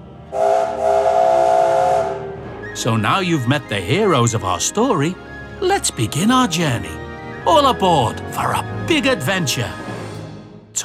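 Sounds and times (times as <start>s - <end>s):
loud sustained steam engine whistle: 0.3s - 2.9s
speech: 2.8s - 9.9s.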